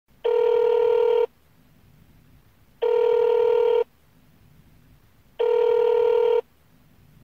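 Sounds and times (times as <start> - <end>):
phone call: 0.2 - 1.3, 2.8 - 3.9, 5.4 - 6.4.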